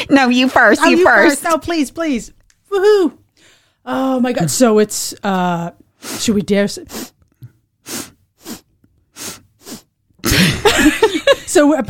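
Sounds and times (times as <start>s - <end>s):
speech: 0.1s - 3.2s, 3.8s - 7.1s, 7.9s - 8.1s, 10.2s - 11.8s
wet sniffs from a stuffy runny nose: 6.0s - 10.0s.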